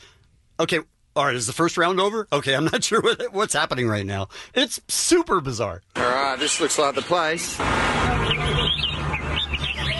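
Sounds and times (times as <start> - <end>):
speech: 0.6 - 9.4
caged songbirds singing at a bird singing contest: 6.4 - 9.9.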